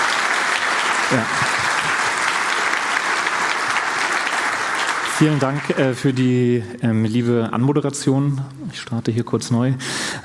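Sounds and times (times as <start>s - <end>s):
audience applause: 0.0s - 6.2s
speech: 1.1s - 1.5s, 5.2s - 10.2s.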